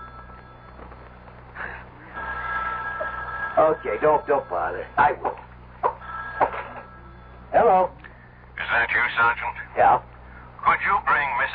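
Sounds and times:
telephone bell ringing: 0:00.0 - 0:01.2, 0:02.1 - 0:05.2, 0:06.0 - 0:07.5
low hum: 0:00.0 - 0:11.5
speech: 0:03.6 - 0:05.5, 0:07.7 - 0:08.0, 0:08.7 - 0:10.1, 0:10.7 - 0:11.5.

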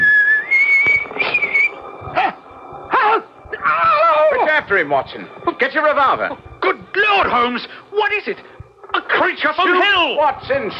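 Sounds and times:
man whistling a wavering tune while walking: 0:00.0 - 0:02.4
dim hum: 0:00.0 - 0:10.7
speech: 0:04.7 - 0:08.5, 0:09.2 - 0:10.7.

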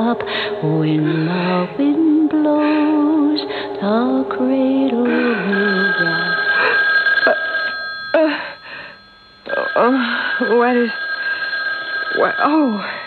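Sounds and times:
speech: 0:00.0 - 0:02.8, 0:03.4 - 0:06.3, 0:09.8 - 0:11.0, 0:12.2 - 0:13.0
telephone ringing with bell-like tones: 0:05.1 - 0:13.0.

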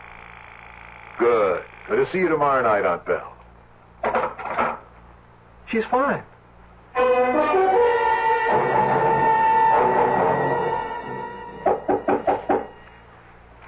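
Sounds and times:
speech: 0:01.2 - 0:03.4, 0:05.7 - 0:06.3
sustained droning tone: 0:06.9 - 0:13.2
firm knocking on a door: 0:11.6 - 0:12.8.

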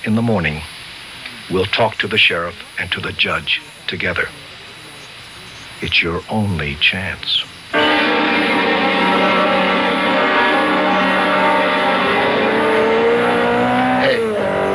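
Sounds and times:
speech: 0:00.0 - 0:00.8, 0:01.5 - 0:04.4, 0:05.8 - 0:07.9
high-revving sports car engine roaring past at high speed: 0:08.5 - 0:14.7.

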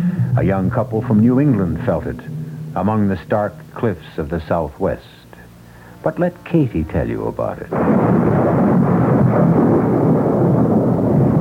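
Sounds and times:
heavy sustained roar of thunder: 0:00.0 - 0:04.0, 0:07.7 - 0:11.4
speech: 0:00.4 - 0:05.2, 0:06.0 - 0:08.6.

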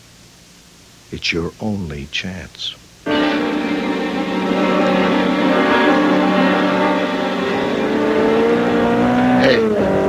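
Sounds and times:
speech: 0:01.1 - 0:03.2
sports car engine roaring while racing past at close to 90 or 100: 0:03.1 - 0:10.0.

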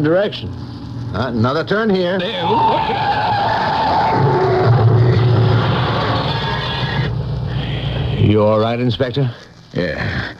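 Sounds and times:
speech: 0:00.0 - 0:04.4, 0:08.3 - 0:10.3
car tires screeching in a hard skid: 0:02.2 - 0:08.4.

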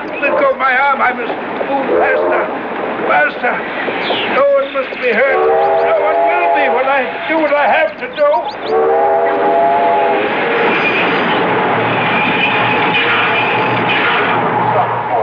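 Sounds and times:
freight train rumbling along the rails: 0:00.0 - 0:15.2
speech: 0:00.2 - 0:09.6
drawn-out freight train horn blast: 0:05.3 - 0:07.4, 0:08.7 - 0:14.2.

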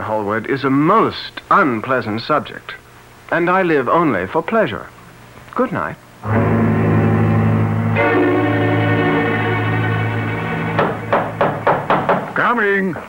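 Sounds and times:
speech: 0:00.1 - 0:05.0, 0:05.6 - 0:06.6, 0:12.6 - 0:13.0
sustained musical drone: 0:06.2 - 0:12.1
heavy knocks on a front door: 0:10.8 - 0:12.4.

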